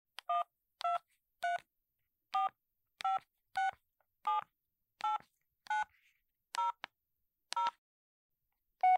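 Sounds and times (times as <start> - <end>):
landline telephone number being dialed: 2.3 - 5.9, 6.5 - 6.9, 7.5 - 7.8.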